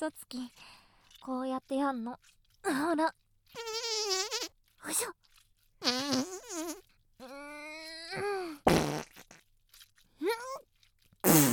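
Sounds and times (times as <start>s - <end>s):
speech: 0.0s - 3.8s, 4.8s - 7.6s, 8.2s - 8.7s, 10.2s - 10.7s
person imitating farts with loud buzzy blasts: 3.6s - 4.5s, 5.8s - 9.4s, 11.2s - 11.5s.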